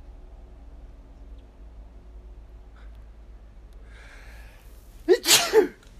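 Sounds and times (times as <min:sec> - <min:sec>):
person sneezing: 0:05.0 - 0:05.8.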